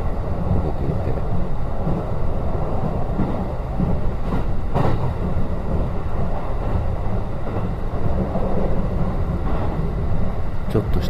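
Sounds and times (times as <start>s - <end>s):
train wheels running over rails: 0.0s - 11.0s.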